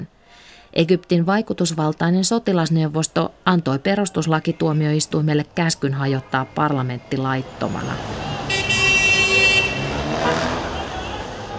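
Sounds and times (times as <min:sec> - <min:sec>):
speech: 0:00.7 - 0:08.5
dense rumble of road traffic in Cairo: 0:02.6 - 0:11.5
car horns honking in a Cairo traffic jam: 0:07.4 - 0:11.5.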